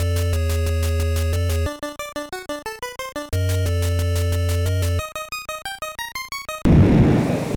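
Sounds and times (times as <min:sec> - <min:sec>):
area intro music for session start: 0:00.0 - 0:05.0.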